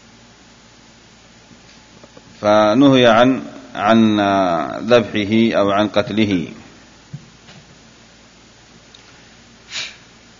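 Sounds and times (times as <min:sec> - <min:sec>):
speech: 0:02.4 - 0:06.6
person sneezing: 0:09.7 - 0:10.1.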